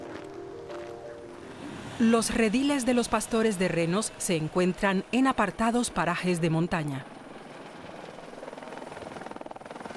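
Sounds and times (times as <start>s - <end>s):
speech: 2.0s - 7.1s
helicopter rotor blades chopping while herding reindeer: 2.8s - 9.9s.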